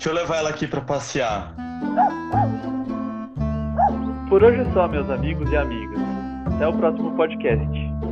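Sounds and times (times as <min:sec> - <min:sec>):
speech: 0:00.0 - 0:02.2, 0:04.3 - 0:08.0
dog barking restlessly with high yips: 0:02.0 - 0:02.6, 0:03.8 - 0:04.1.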